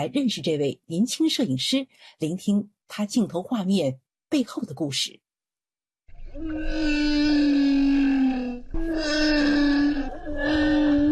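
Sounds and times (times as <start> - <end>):
speech: 0.0 - 5.2, 6.4 - 7.3
humpback whale moaning underwater in the sea off Tonga: 6.3 - 11.0.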